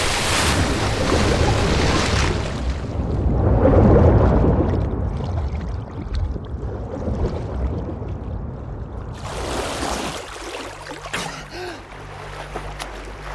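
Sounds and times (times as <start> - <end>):
heavy splash of person plunging into black sea water: 0.0 - 6.0, 9.2 - 11.6
sea water churning and rushing: 0.0 - 13.3
low underwater rumble: 0.5 - 9.9.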